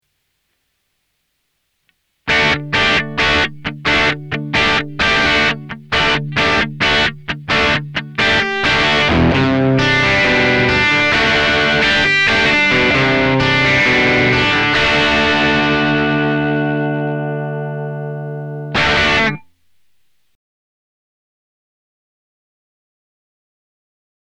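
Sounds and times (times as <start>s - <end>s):
riff through Amplug AC30: 2.3s - 20.2s.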